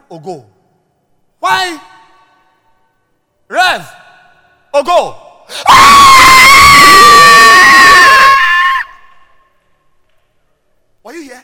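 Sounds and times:
speech: 0.1 - 0.6, 1.4 - 2.0, 3.5 - 4.0, 4.7 - 7.9
woman screaming: 5.7 - 8.9.

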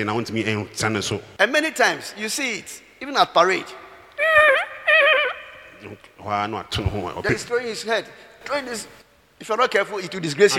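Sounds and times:
speech: 0.0 - 3.8, 5.8 - 10.5
voice imitating a horse neighing: 4.2 - 6.0.

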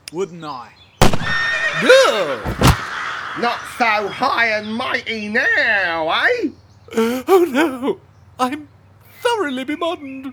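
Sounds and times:
speech: 0.1 - 8.6, 9.3 - 10.3
horse whinnying: 1.3 - 2.8
laughter: 1.8 - 4.5, 6.9 - 8.6.

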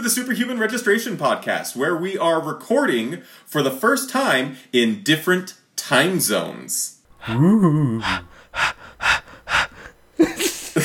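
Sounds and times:
speech: 0.0 - 9.2
whiny vocal tone: 7.1 - 9.9
human voice imitating heavy panting with breathy huffs and gasps: 7.1 - 10.8.

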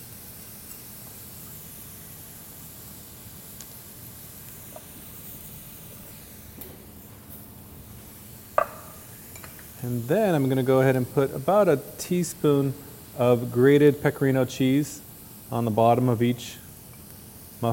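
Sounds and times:
cooking spray hissing from an aerosol can onto a muffin tin: 0.0 - 17.7
sharp metallic clink: 8.6 - 9.7
speech: 9.8 - 16.6.

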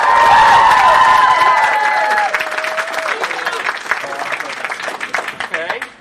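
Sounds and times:
live audience cheering with whoops and high shouted voices: 0.0 - 4.7
live audience dense clapping: 0.0 - 5.9.

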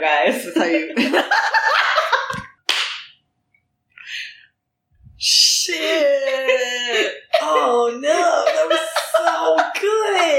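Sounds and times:
speech: 0.0 - 1.0
laughter: 0.9 - 2.5, 7.6 - 10.3
hand slapping a chest over the heart: 2.3 - 3.2
breathy sounds: 4.0 - 6.2.

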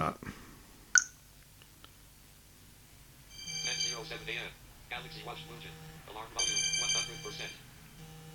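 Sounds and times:
smartphone ringing with bright melodic ringtone from find-my-phone alert: 3.3 - 8.3
speech: 5.0 - 7.7.

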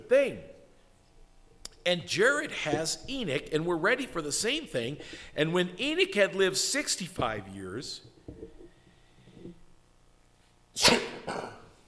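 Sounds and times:
speech: 0.1 - 0.5, 1.8 - 8.5
sneeze into a lapel microphone: 10.8 - 11.7.

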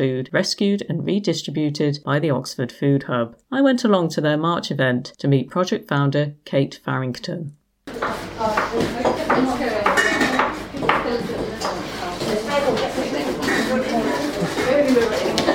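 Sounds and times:
speech: 0.0 - 7.6
dishes, pots and utensils clattering in a busy kitchen: 8.0 - 15.5.

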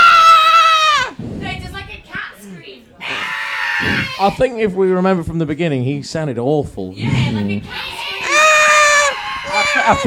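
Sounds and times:
person screaming in a high wavering voice imitating an alien creature: 0.0 - 1.1, 8.2 - 10.0
speech: 4.2 - 7.8, 9.9 - 10.0.

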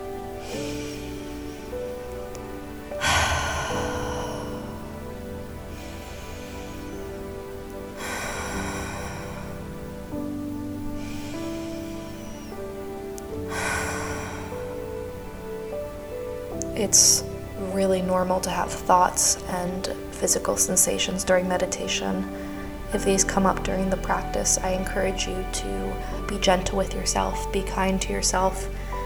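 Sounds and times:
deep cleansing breaths during a guided meditation: 0.0 - 16.7, 22.2 - 22.9, 28.5 - 29.0
soft sustained meditation music bed: 0.0 - 29.0
speech: 16.8 - 28.8.

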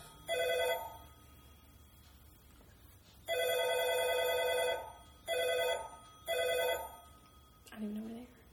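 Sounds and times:
electronic phone ringer trilling: 0.0 - 2.0, 3.2 - 7.6.

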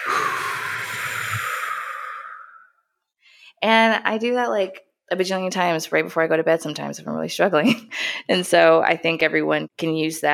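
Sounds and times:
deep breath in and out during a guided breathing exercise: 0.0 - 3.6
speech: 3.6 - 10.3.

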